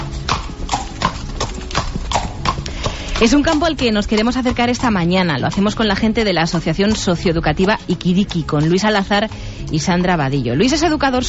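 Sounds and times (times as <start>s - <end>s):
horse hooves clip-clopping: 0.0s - 9.3s
speech: 3.2s - 11.2s.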